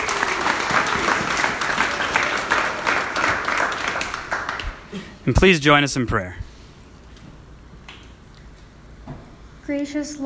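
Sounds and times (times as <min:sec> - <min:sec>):
sustained applause from a sizable audience: 0:00.0 - 0:04.9
speech: 0:05.3 - 0:06.4, 0:09.7 - 0:10.2.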